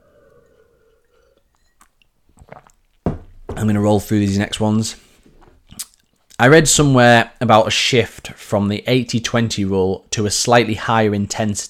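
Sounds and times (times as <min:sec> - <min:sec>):
sipping a drink: 0:00.0 - 0:03.3, 0:05.3 - 0:06.4
speech: 0:03.6 - 0:05.0, 0:06.4 - 0:11.6.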